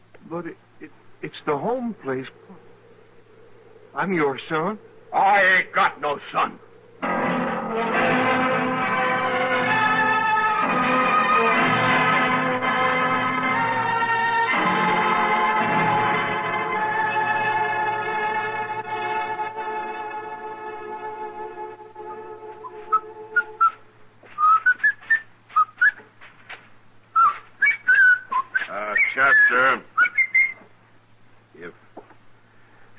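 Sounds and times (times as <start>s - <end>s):
faint low hum: 0.0s - 32.9s
speech: 0.3s - 2.7s, 3.9s - 7.1s
steady droning chord: 6.7s - 23.4s
man whistling a lively tune: 22.0s - 26.0s, 27.1s - 30.7s.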